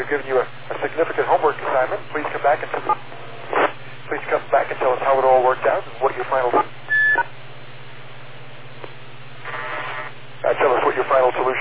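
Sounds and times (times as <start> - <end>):
speech: 0.0 - 7.3, 10.6 - 11.5
static hiss: 0.0 - 7.4, 8.7 - 11.5
low hum: 0.0 - 11.5
electronic courtesy beep from a radio repeater: 6.9 - 7.3.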